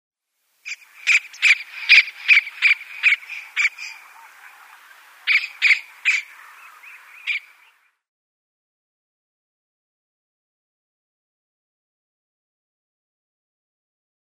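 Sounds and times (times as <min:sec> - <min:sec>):
White-throated Kingfisher calls: 0:00.6 - 0:07.9.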